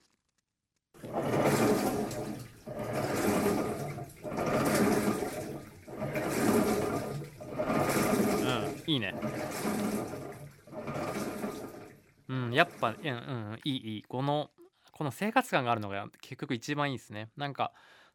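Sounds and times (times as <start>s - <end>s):
washing machine churning: 1.0s - 13.3s
water sloshing in a washing machine: 1.0s - 13.4s
speech: 8.9s - 10.2s, 12.6s - 18.0s.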